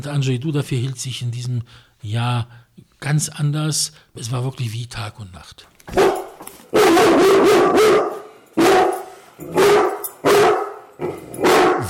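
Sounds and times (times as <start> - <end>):
speech: 0.0 - 8.1
chained guard dog barking harshly: 5.9 - 11.8.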